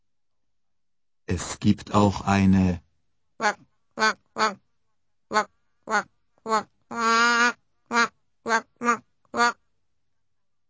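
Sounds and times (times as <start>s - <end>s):
speech: 1.3s - 2.8s, 3.4s - 4.6s, 5.3s - 7.1s
duck quacking: 3.4s - 4.6s, 5.3s - 9.6s.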